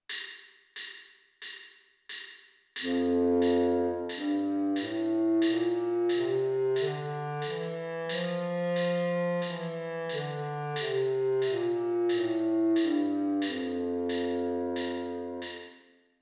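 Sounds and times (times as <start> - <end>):
bass clarinet playing a G major scale: 2.8 - 15.6.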